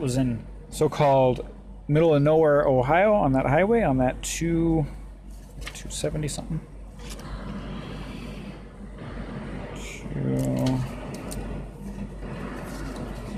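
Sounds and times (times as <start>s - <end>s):
speech: 0.0s - 5.0s, 5.9s - 6.7s, 10.2s - 10.9s
truck engine idling: 6.8s - 13.3s.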